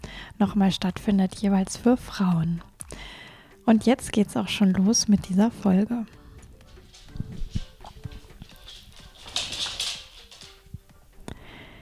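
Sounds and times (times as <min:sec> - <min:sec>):
speech: 0:00.4 - 0:03.1, 0:03.7 - 0:06.2
dog's paws pattering across a hard floor: 0:06.4 - 0:11.1.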